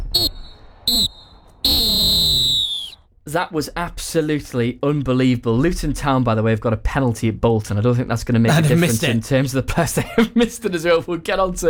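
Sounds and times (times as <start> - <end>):
referee's full-time whistle blasts: 0.0 - 3.0
speech: 0.9 - 1.2, 3.3 - 11.6
laughter: 8.5 - 10.7.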